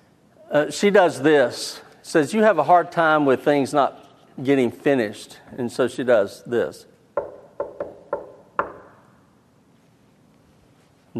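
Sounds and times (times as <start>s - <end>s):
speech: 0.5s - 6.9s
knocks on a hard surface: 7.2s - 9.0s.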